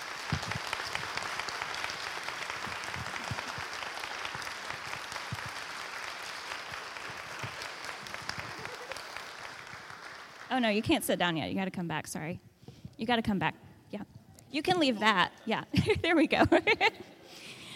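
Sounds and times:
audience applause: 0.0s - 11.0s
speech: 10.6s - 17.4s.

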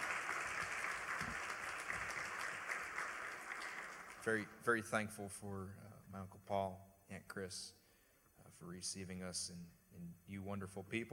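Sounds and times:
church audience applauding during a morning service: 0.0s - 4.5s
speech: 4.2s - 7.8s, 8.5s - 11.1s.

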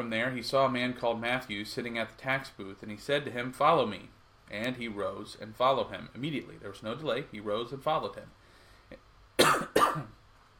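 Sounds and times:
speech: 0.0s - 9.0s
coughing with throat clearing: 9.4s - 10.2s.

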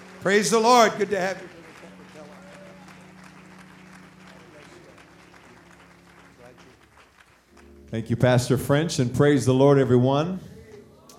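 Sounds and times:
roomful of crowd applause: 0.0s - 8.5s
speech: 0.2s - 1.6s, 7.9s - 10.6s.

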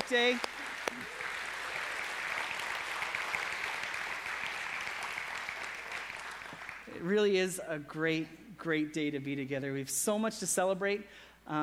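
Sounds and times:
large crowd clapping in a big indoor space: 0.0s - 7.0s
speech: 0.1s - 1.2s, 7.0s - 11.6s.

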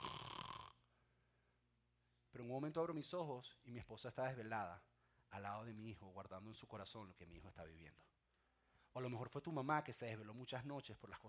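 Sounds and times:
man imitating a loud rasping snore: 0.0s - 0.8s
speech: 2.3s - 8.2s, 9.0s - 11.2s.

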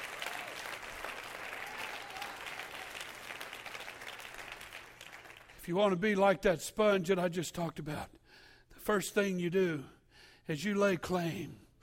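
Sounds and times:
large crowd applauding: 0.0s - 5.6s
speech: 5.6s - 8.2s, 8.8s - 11.6s.

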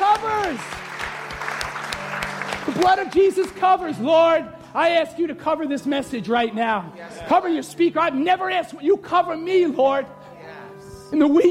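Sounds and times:
crowd clapping: 0.0s - 4.1s
speech: 2.7s - 10.2s, 11.1s - 11.4s.

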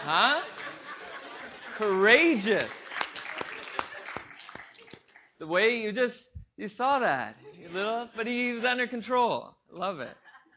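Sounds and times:
speech: 0.0s - 0.6s, 1.8s - 2.8s, 5.4s - 10.2s
laughter: 0.0s - 4.9s
scattered slow hand claps: 2.3s - 5.4s.

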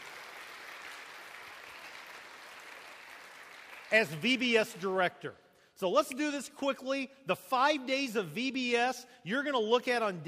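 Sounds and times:
church congregation applauding at a vacation Bible school event: 0.0s - 4.8s
speech: 3.9s - 10.2s.

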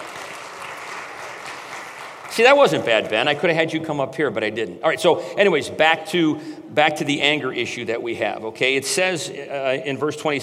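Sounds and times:
crowd applauding: 0.0s - 3.6s
speech: 2.4s - 10.4s.

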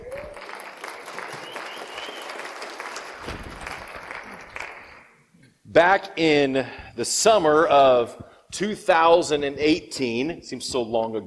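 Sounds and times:
audience applauding: 0.0s - 5.2s
speech: 5.8s - 11.2s.

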